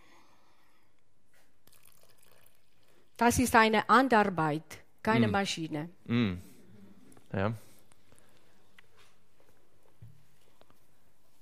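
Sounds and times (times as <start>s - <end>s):
water poured into a bowl for focaccia dough: 1.6s - 3.2s
speech: 3.2s - 6.5s, 7.3s - 7.7s.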